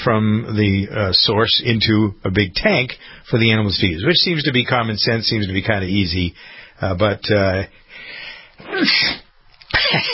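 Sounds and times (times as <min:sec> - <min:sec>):
speech: 0:00.0 - 0:09.2, 0:09.8 - 0:10.1
person sneezing loudly: 0:08.6 - 0:10.1.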